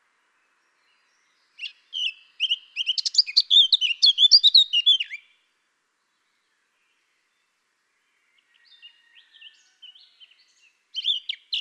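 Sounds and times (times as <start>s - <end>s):
Eurasian blackcap Sylvia atricapilla song: 0.0s - 5.4s, 8.4s - 11.5s.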